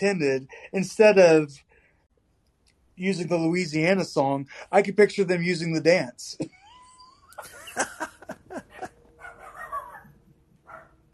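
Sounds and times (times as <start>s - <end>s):
speech: 0.0s - 1.7s, 3.0s - 6.6s
laughter: 6.4s - 9.1s
dog barking with sharp high yips: 8.7s - 11.0s.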